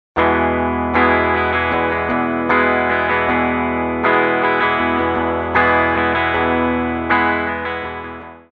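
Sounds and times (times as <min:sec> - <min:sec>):
guitar strumming: 0:00.2 - 0:08.5.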